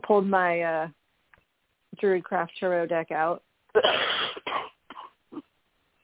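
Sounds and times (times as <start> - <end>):
speech: 0.1 - 1.0, 2.0 - 4.1
person coughing harshly: 3.8 - 5.5.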